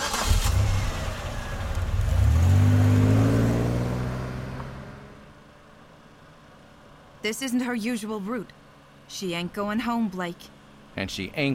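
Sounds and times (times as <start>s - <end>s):
car engine revving and accelerating: 0.0s - 5.3s
speech: 7.2s - 11.5s.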